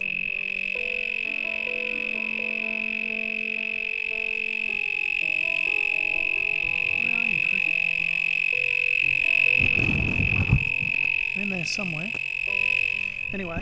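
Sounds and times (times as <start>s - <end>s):
cricket chirping: 0.0s - 13.6s
rustling thump: 9.6s - 11.1s
speech: 11.6s - 12.2s, 13.3s - 13.6s.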